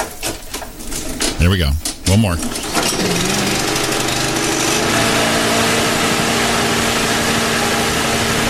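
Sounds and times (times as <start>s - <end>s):
speech: 1.4s - 3.6s
traffic helicopter engine starting up: 2.1s - 8.4s.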